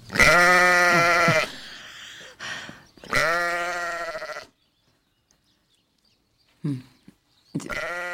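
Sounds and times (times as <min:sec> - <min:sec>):
sheep bleating loudly: 0:00.1 - 0:01.6, 0:03.1 - 0:04.6, 0:07.7 - 0:08.1.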